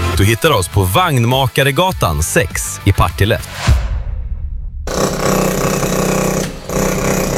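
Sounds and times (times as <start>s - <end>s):
speech: 0.2s - 3.8s
rammer hydraulic hammer compactor pounding: 4.9s - 7.3s.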